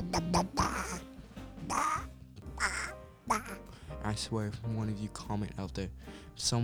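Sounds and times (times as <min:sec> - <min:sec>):
human voice imitating duck quacks: 0:00.0 - 0:01.1, 0:01.7 - 0:03.7
speech: 0:00.1 - 0:01.0, 0:03.3 - 0:06.6.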